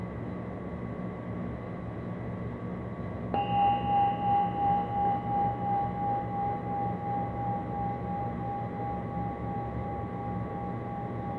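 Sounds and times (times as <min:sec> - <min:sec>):
soft low drone: 0:00.0 - 0:11.3
single bell ringing: 0:03.4 - 0:11.3.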